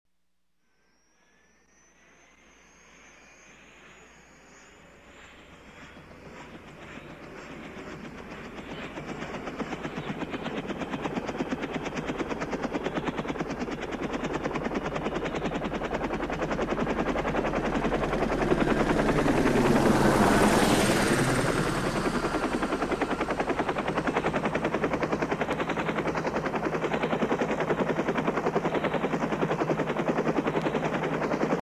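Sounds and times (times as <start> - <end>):
helicopter starting up: 1.1 - 31.6.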